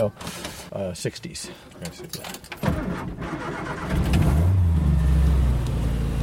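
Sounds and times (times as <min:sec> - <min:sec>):
speech: 0:00.0 - 0:04.5
small vintage 1960s Morris car engine starting, revving and idling: 0:02.6 - 0:06.2.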